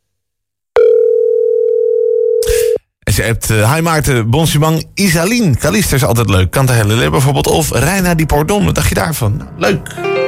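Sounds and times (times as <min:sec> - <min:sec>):
telephone ringing tone on an unanswered call: 0:00.8 - 0:02.8
speech: 0:03.2 - 0:10.1.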